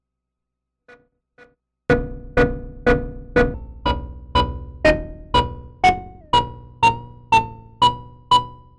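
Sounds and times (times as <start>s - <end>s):
synthesizer tone using a sample as an oscillator: 1.9s - 8.5s.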